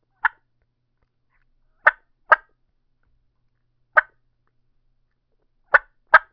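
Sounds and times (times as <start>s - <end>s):
supermouth turkey call clucks: 0.2s - 0.4s, 1.8s - 2.5s, 4.0s - 4.2s, 5.7s - 6.3s.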